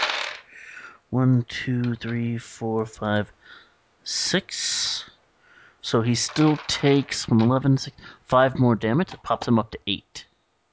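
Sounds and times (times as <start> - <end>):
dice tumbling across a hard table in a tabletop game: 0.0 - 0.5, 6.1 - 7.6
speech: 1.1 - 5.2, 5.8 - 10.3.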